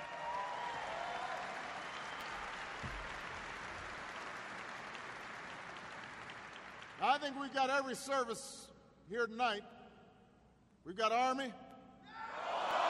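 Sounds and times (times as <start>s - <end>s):
applause from a large audience including military service members: 0.0s - 7.0s
speech: 7.0s - 9.8s, 10.8s - 11.6s.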